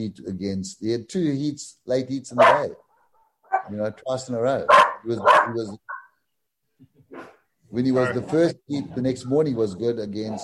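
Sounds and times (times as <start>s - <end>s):
speech: 0.0s - 2.8s, 3.7s - 6.0s, 7.7s - 10.4s
large dog barking: 2.4s - 3.8s, 4.7s - 6.1s.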